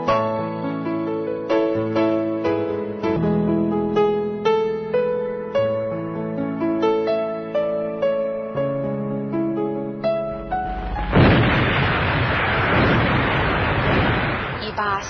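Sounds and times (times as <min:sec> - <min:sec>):
tonal music: 0:00.0 - 0:13.0
British cannon bombardment: 0:10.3 - 0:15.0.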